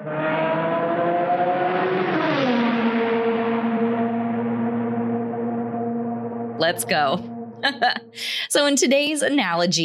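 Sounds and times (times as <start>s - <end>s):
race car engines roaring: 0.0s - 6.7s
speech: 6.6s - 9.8s
laughter: 7.6s - 8.4s.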